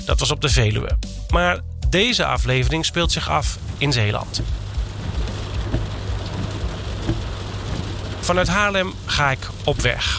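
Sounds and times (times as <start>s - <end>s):
speech: 0.1s - 4.6s, 8.3s - 10.1s
low rumbling under heavy rain: 2.7s - 10.1s
heavy rain as if heard from inside a vehicle: 3.1s - 10.1s.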